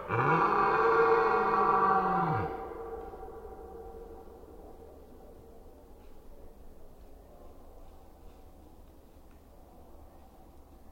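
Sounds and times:
rutting red deer roaring in the Forêt d'Orléans France: 0:00.0 - 0:03.5.

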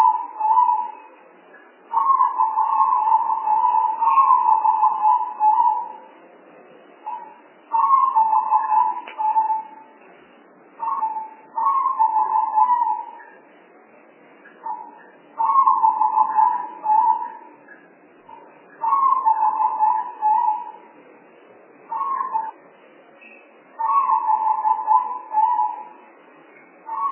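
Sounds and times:
spotted dove cooing: 0:00.0 - 0:01.0, 0:01.9 - 0:06.0, 0:07.1 - 0:09.8, 0:10.8 - 0:13.2, 0:14.6 - 0:17.5, 0:18.4 - 0:20.9, 0:21.9 - 0:22.6, 0:23.8 - 0:26.0, 0:26.9 - 0:27.0.

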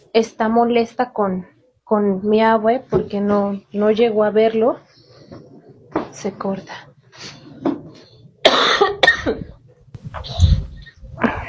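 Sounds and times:
speech: 0:00.2 - 0:05.5, 0:06.1 - 0:07.7, 0:08.5 - 0:10.5
person coughing harshly: 0:08.5 - 0:09.5.

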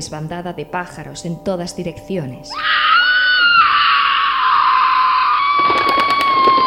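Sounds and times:
speech: 0:00.0 - 0:02.8
woman screaming in terror in a jungle: 0:02.5 - 0:06.6.

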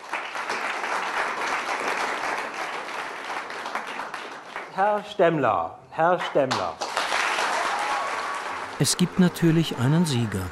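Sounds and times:
audience applause as a vote at a philosophy debate event: 0:00.0 - 0:04.7, 0:06.8 - 0:10.5
speech: 0:04.8 - 0:06.8, 0:08.8 - 0:10.5.

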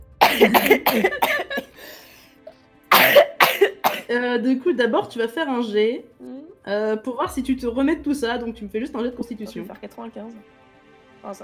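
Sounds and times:
person coughing harshly during a tabletop role-playing game session: 0:00.1 - 0:02.2, 0:02.9 - 0:04.1
speech: 0:00.4 - 0:02.0, 0:04.1 - 0:10.6, 0:11.2 - 0:11.4.

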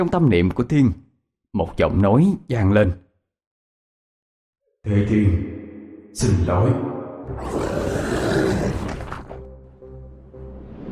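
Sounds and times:
speech: 0:00.0 - 0:03.0, 0:04.8 - 0:08.8
loud deep roar reverberating across an open space: 0:07.4 - 0:09.2.

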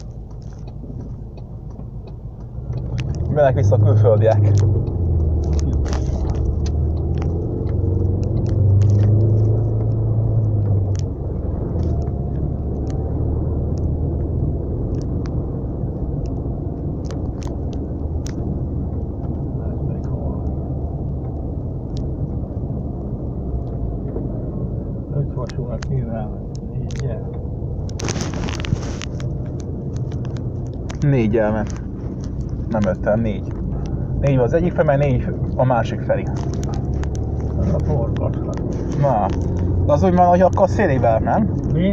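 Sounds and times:
heavy road traffic on a road taking diverted vehicles: 0:00.0 - 0:41.9
vehicles passing: 0:00.0 - 0:41.9
speech: 0:03.4 - 0:05.0, 0:31.3 - 0:31.8, 0:32.7 - 0:33.6, 0:34.2 - 0:36.6, 0:37.8 - 0:41.9.

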